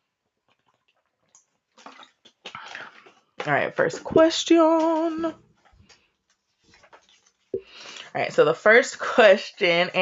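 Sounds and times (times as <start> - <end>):
person drinking water with sips and gulps: 0.5 - 3.4, 5.6 - 8.1
speech: 3.4 - 5.4, 8.2 - 10.0.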